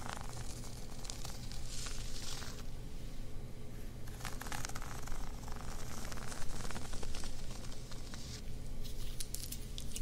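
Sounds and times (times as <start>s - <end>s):
fabric scratching and rubbing: 0.0s - 2.6s, 4.1s - 8.4s
low steady hum: 0.0s - 10.0s.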